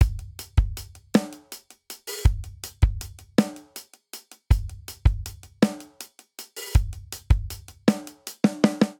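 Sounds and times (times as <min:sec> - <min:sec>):
rock drum beat in six-eight: 0:00.0 - 0:08.9.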